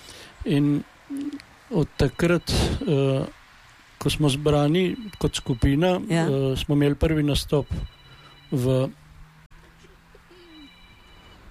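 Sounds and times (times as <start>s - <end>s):
steady hum: 0.0s - 11.4s
speech: 0.4s - 3.4s, 4.0s - 9.0s
faint electronic mobile phone ringtone: 4.7s - 6.4s, 7.3s - 9.0s, 10.3s - 11.4s.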